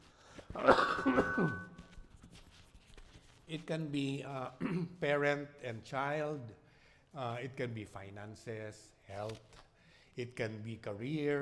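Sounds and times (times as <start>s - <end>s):
harsh throaty coughs: 0.6s - 1.7s, 4.6s - 4.9s
speech: 3.5s - 9.6s, 10.2s - 11.4s.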